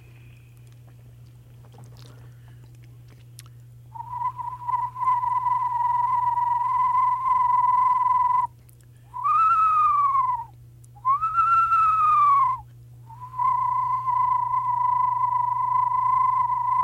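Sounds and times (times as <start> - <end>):
low steady hum: 0.0 - 16.8
person whistling through spit to imitate an eastern screech owl whinny: 3.9 - 8.5, 9.1 - 16.8.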